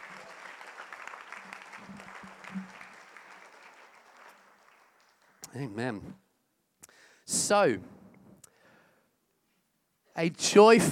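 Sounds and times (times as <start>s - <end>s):
audience applauding in a large room: 0.0s - 5.6s
speech: 5.5s - 6.2s, 7.5s - 7.9s, 10.2s - 10.9s.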